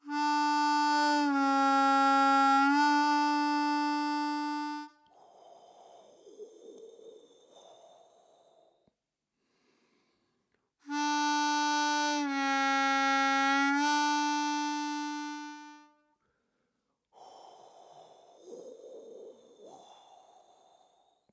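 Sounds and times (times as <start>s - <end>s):
harmonica draw note bend: 0.0s - 4.9s, 10.9s - 15.9s.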